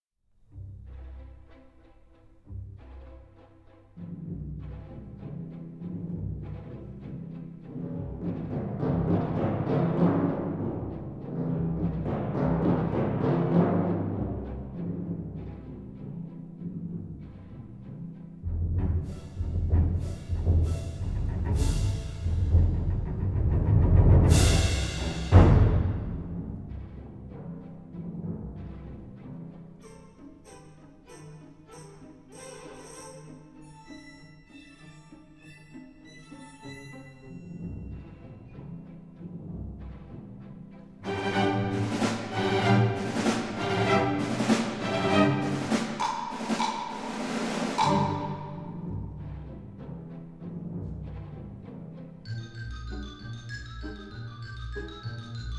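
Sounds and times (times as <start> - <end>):
orchestral timpani: 2.5 - 34.0, 36.4 - 55.5.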